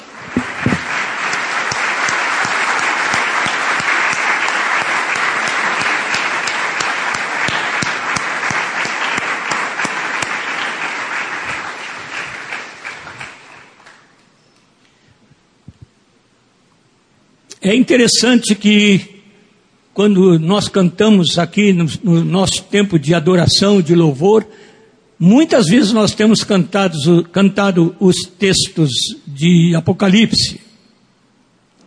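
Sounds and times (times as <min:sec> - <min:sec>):
large audience applauding: 0:00.0 - 0:14.3
speech: 0:17.7 - 0:19.1, 0:20.0 - 0:30.6.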